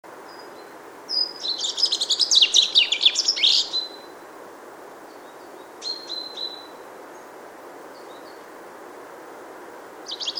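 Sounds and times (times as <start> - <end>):
common chaffinch Fringilla coelebs song: 0.2 - 4.1, 5.0 - 7.3, 7.9 - 8.5, 10.0 - 10.3.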